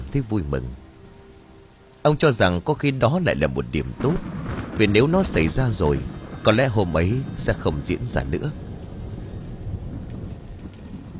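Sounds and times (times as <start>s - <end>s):
heavy rain: 0.0s - 11.1s
speech: 0.1s - 0.8s, 2.0s - 8.7s
low thunder rumble: 2.9s - 11.1s.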